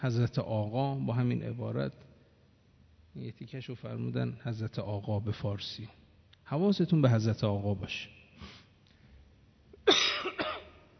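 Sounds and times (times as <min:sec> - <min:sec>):
speech: 0:00.0 - 0:02.1, 0:03.2 - 0:08.6
person coughing from a lingering illness: 0:09.8 - 0:10.9.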